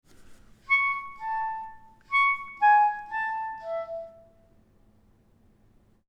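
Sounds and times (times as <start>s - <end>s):
melody in thirds and fourths: 0.7s - 4.4s.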